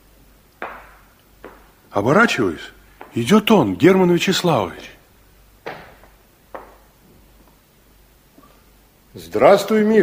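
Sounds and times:
footsteps approaching: 0.6s - 3.6s, 5.6s - 7.6s
speech: 2.0s - 5.0s, 9.3s - 10.0s.

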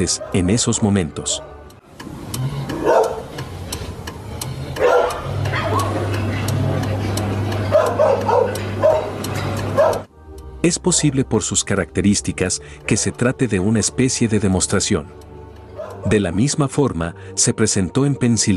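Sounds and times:
several dogs barking outdoors: 0.0s - 1.6s, 2.6s - 3.6s, 4.4s - 10.1s, 15.7s - 16.2s
speech: 0.0s - 2.2s, 10.6s - 15.3s, 16.0s - 18.5s
low engine rumble: 1.9s - 14.1s.

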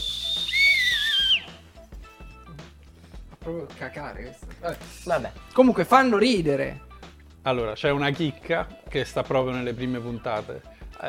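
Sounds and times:
person whistling a short melodic phrase: 0.0s - 1.7s
speech: 3.4s - 11.0s.

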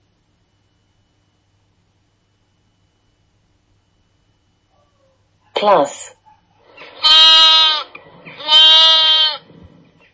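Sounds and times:
speech: 5.6s - 6.2s
lambs bleating: 7.0s - 9.5s.

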